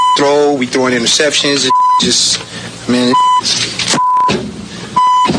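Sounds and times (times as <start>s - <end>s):
speech: 0.2s - 4.4s
short mid-pitched electronic beeps: 3.1s - 4.3s, 5.0s - 5.3s.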